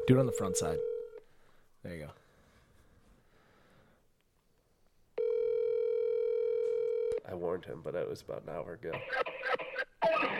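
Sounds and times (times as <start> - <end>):
loud steady electronic telephone tone: 0.0 - 1.2, 5.2 - 7.2
speech: 0.1 - 0.9, 1.8 - 2.2, 7.3 - 9.3.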